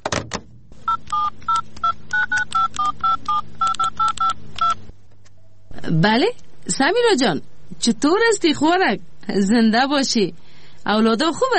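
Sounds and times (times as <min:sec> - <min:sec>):
faint hum: 0:00.1 - 0:11.5
electronic telephone keypad beeps while dialing: 0:00.9 - 0:04.8
speech: 0:05.9 - 0:11.5.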